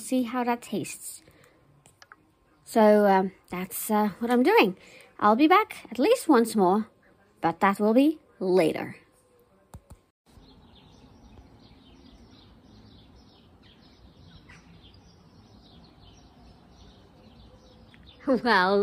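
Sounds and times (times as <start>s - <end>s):
speech: 0.1s - 1.3s, 2.7s - 9.0s, 18.3s - 18.8s
birds singing and chirping outdoors after rain on a chilly windy day: 10.3s - 18.8s.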